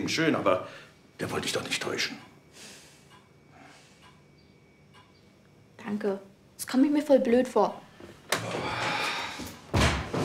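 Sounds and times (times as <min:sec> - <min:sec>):
speech: 0:00.0 - 0:02.3, 0:05.8 - 0:07.8, 0:08.4 - 0:09.0
door slamming shut: 0:09.7 - 0:10.2.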